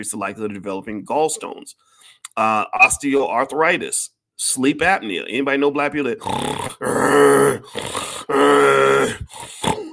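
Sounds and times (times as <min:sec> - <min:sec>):
speech: 0:00.0 - 0:09.9
voice imitating snoring: 0:06.2 - 0:09.9.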